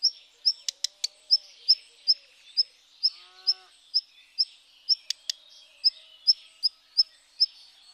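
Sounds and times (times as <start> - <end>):
dry clicking ticks: 0.0 - 1.2, 4.9 - 5.4
black redstart giving short sharp high calls: 0.0 - 7.6.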